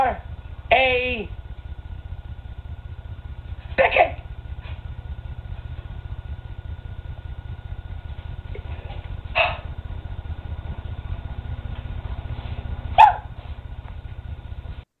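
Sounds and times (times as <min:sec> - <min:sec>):
low rumble: 0:00.0 - 0:14.9
dog barking: 0:09.4 - 0:09.6, 0:13.0 - 0:13.3.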